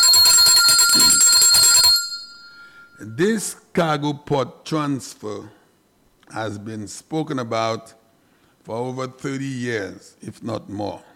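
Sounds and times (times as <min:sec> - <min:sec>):
bell rung loudly in rapid repeated strokes: 0:00.0 - 0:03.0
speech: 0:03.2 - 0:05.6, 0:06.3 - 0:08.0, 0:08.7 - 0:11.1.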